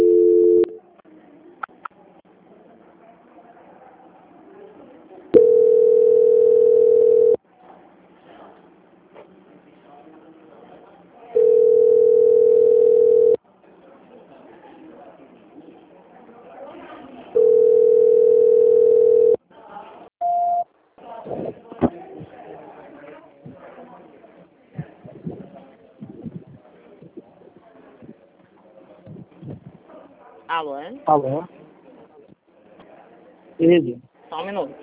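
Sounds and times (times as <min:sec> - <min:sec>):
telephone line beeps while a call is transferred: 0:00.0 - 0:00.8, 0:05.4 - 0:07.4, 0:11.4 - 0:13.4, 0:17.4 - 0:19.4, 0:20.2 - 0:20.6
speech: 0:31.0 - 0:31.5, 0:33.6 - 0:34.8.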